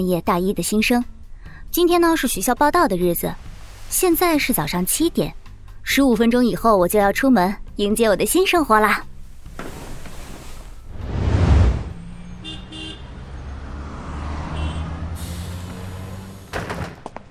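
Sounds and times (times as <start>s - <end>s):
speech: 0.0s - 1.1s, 1.7s - 9.7s
city bus engine low rumble: 0.0s - 5.9s, 8.6s - 17.2s
city bus air brakes hissing: 15.1s - 16.6s.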